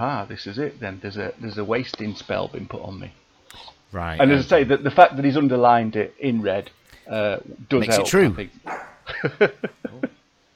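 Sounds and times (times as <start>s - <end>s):
speech: 0.0s - 10.2s
dog barking in sharp yaps: 8.6s - 9.1s
laughter: 9.1s - 10.2s.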